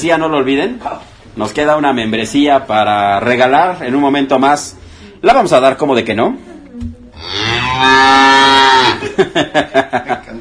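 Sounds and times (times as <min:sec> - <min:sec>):
speech: 0:00.0 - 0:06.9, 0:07.8 - 0:10.3
cow mooing: 0:07.2 - 0:09.0
laughter: 0:08.8 - 0:10.3.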